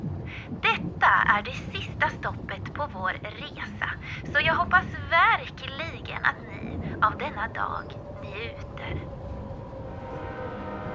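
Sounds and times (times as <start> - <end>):
faint tonal whine: 0.0 - 10.9
speech: 1.3 - 9.2
train slowing down arriving at station: 4.5 - 10.9.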